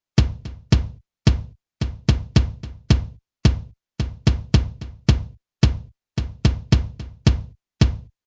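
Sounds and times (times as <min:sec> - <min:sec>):
kick drum with no compression: 0:00.0 - 0:08.2.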